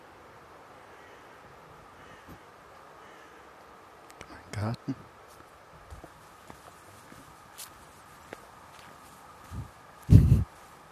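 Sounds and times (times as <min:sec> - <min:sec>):
quiet steady hum: 0:00.0 - 0:10.8
speech: 0:04.6 - 0:05.1
footsteps walking through dry leaves: 0:06.0 - 0:10.8.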